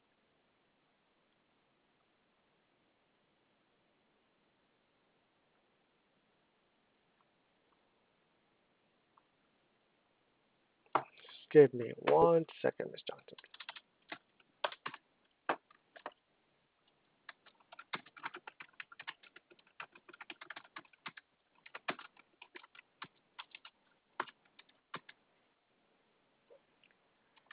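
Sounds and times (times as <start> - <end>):
speech: 11.5 - 13.6
typing an email on a computer keyboard: 13.3 - 16.2, 17.3 - 25.2, 27.4 - 27.5.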